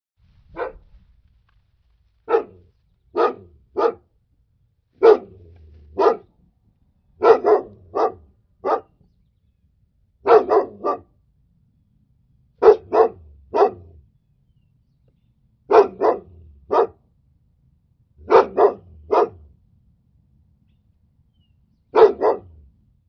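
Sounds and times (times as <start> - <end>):
dog barking: 0.5 - 0.9, 2.2 - 4.1, 5.0 - 6.3, 7.2 - 9.0, 10.2 - 11.1, 12.6 - 14.0, 15.7 - 17.0, 18.2 - 19.5, 21.9 - 22.6.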